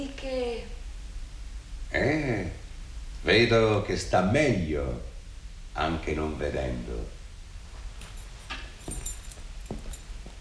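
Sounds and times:
speech: 0.0s - 0.8s, 1.9s - 2.6s, 3.2s - 5.1s, 5.8s - 7.2s
low steady hum: 0.0s - 10.3s
keys to a study jingling as they are handed over: 8.0s - 10.3s.

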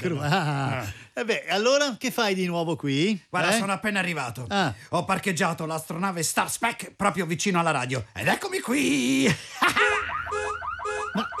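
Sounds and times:
laughter: 0.0s - 1.0s, 9.0s - 10.4s, 11.0s - 11.3s
speech: 0.0s - 10.0s, 11.1s - 11.3s
futuristic spaceship asteroid-avoidance electronic alarm blaring: 9.8s - 11.3s.

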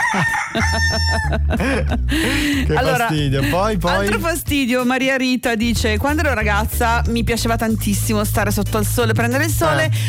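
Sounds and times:
neighbour's rooster crowing: 0.0s - 1.4s
laughter: 0.0s - 4.4s
speech: 0.1s - 10.0s.

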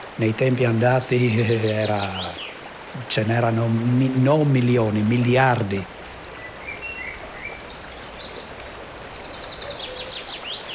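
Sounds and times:
wind rushing through leaves: 0.0s - 10.7s
speech: 0.2s - 6.0s
small birds chirping and whistling: 1.0s - 3.3s, 6.3s - 10.7s.

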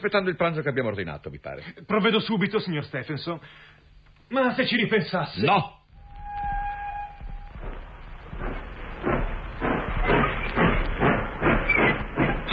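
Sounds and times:
speech: 0.0s - 5.8s
steam locomotive short whistle: 6.0s - 7.8s
steam locomotive pulling away with loud hissing chuffs: 6.2s - 12.5s.

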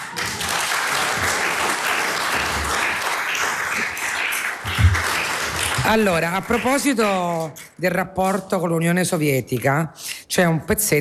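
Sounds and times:
audience applause: 0.0s - 7.0s
speech: 5.9s - 10.9s.

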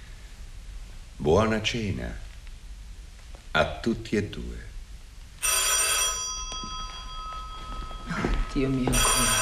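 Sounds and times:
speech: 1.2s - 2.2s, 3.6s - 4.7s, 8.6s - 9.4s
old-fashioned telephone bell ringing: 5.4s - 9.4s.

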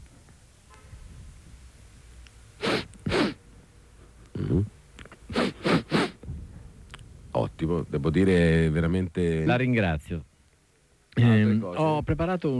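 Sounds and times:
voice imitating a man with a cold sniffling: 2.6s - 3.4s, 4.3s - 4.7s, 5.2s - 6.2s
speech: 7.7s - 10.3s, 11.1s - 12.5s.

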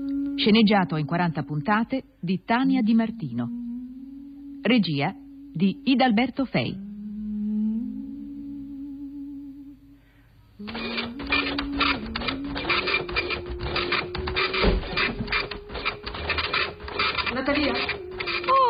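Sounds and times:
speech: 0.4s - 3.6s, 4.6s - 6.8s
printer running while printing: 10.6s - 18.6s.

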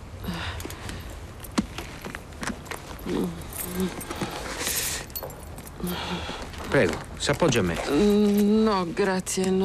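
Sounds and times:
car keys jangling as they are handed over: 2.6s - 6.7s
speech: 3.1s - 4.2s, 5.8s - 9.6s.

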